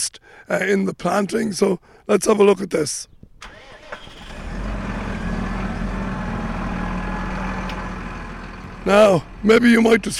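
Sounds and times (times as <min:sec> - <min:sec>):
speech: 0:00.0 - 0:03.5, 0:08.8 - 0:10.1
big tractor diesel engine cranking and starting for sowing: 0:03.4 - 0:10.1.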